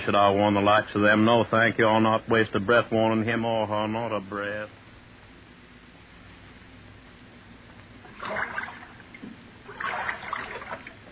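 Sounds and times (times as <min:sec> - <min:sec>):
speech: 0:00.0 - 0:04.8
water sloshing and splashing against a small boat: 0:08.1 - 0:09.0, 0:09.7 - 0:11.1.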